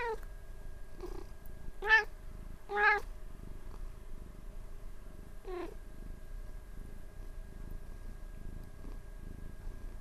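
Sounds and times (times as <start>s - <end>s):
cat giving soft short meows: 0.0s - 0.2s, 1.8s - 2.1s, 2.7s - 3.1s, 5.5s - 5.7s
faint steady hum: 0.0s - 9.9s
low background noise: 0.0s - 9.9s.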